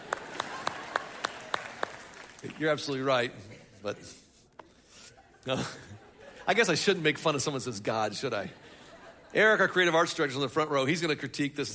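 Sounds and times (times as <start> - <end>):
steady evenly spaced hand claps of an audience: 0.0 - 2.6
speech: 2.4 - 4.2, 5.4 - 8.6, 9.3 - 11.7
laughter: 3.2 - 7.2, 8.2 - 10.2.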